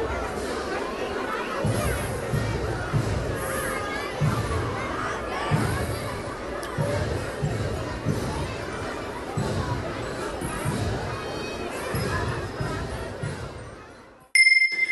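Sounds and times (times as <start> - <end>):
children's voices in a lantern procession: 0.0 - 14.3
lantern procession crowd chatter outside a door: 0.0 - 14.9.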